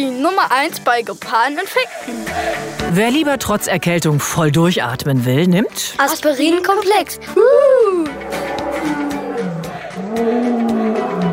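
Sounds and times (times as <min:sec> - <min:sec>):
speech: 0:00.0 - 0:08.4
lion roaring with deep throaty growls: 0:08.2 - 0:11.3.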